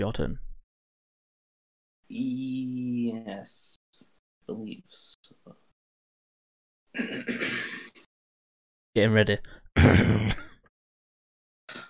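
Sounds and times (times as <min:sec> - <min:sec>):
speech: 0:00.0 - 0:00.5, 0:02.1 - 0:05.6, 0:06.9 - 0:07.9, 0:09.0 - 0:10.5
person clearing throat: 0:07.0 - 0:07.9, 0:09.8 - 0:10.5.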